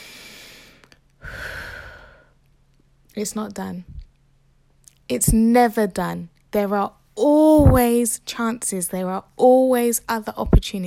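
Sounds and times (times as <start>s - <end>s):
soft breathing during a calming breathing exercise: 0.0s - 2.4s
speech: 3.2s - 4.0s, 5.1s - 10.8s.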